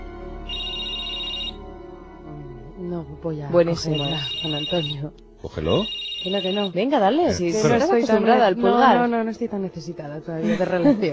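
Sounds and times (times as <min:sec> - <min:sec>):
electronic two-tone telephone ringtone for an incoming call: 0:00.5 - 0:01.6, 0:03.8 - 0:05.0, 0:05.6 - 0:07.0
speech: 0:03.0 - 0:11.1.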